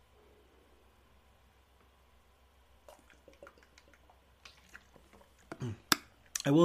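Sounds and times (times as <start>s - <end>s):
sipping water: 2.8s - 6.5s
swallowing clicks: 2.9s - 6.5s
speech: 6.5s - 6.6s.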